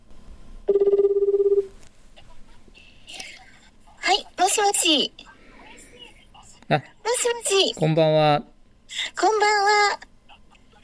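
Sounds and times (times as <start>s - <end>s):
telephone ringing with a rapid warbling trill: 0.7s - 1.7s
speech: 4.9s - 5.2s, 6.7s - 8.5s, 9.2s - 10.1s.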